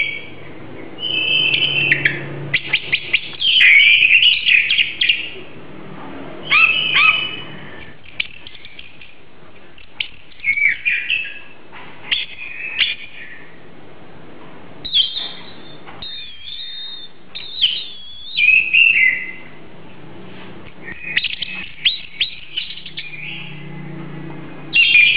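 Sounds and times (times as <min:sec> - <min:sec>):
Oriental magpie-robin song of whistled phrases and sharp chirps: 0:00.0 - 0:05.4, 0:06.4 - 0:09.1, 0:09.9 - 0:13.6, 0:14.8 - 0:19.6, 0:20.8 - 0:23.7, 0:24.7 - 0:25.1.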